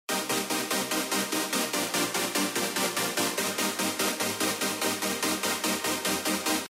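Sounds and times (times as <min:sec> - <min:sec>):
synthesizer chord in D: 0:00.1 - 0:06.6.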